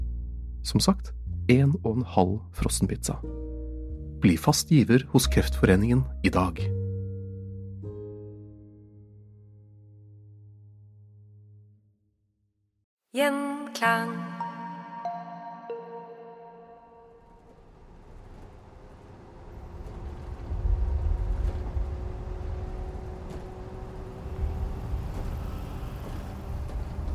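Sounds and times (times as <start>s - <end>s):
speech: 0.6s - 3.5s, 4.2s - 6.8s, 13.2s - 14.3s
brief tonal chime: 13.8s - 17.2s
bus engine rumbling on the road to Sweden: 17.2s - 27.1s.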